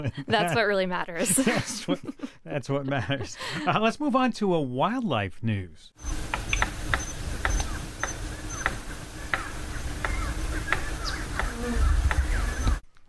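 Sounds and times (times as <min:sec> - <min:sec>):
laughter: 0:00.0 - 0:03.9
speech: 0:00.0 - 0:06.4
palm cockatoo drumming with sharp hollow taps: 0:06.1 - 0:12.8.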